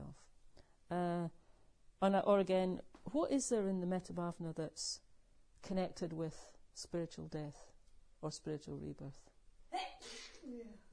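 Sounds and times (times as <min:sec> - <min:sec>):
speech: 0:00.9 - 0:01.4, 0:02.0 - 0:10.8
person sneezing: 0:09.8 - 0:10.5.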